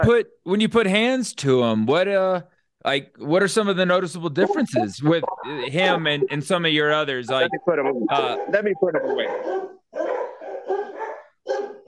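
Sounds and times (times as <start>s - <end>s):
speech: 0.0s - 10.2s
dog barking in loud drawn-out bursts: 8.1s - 11.8s.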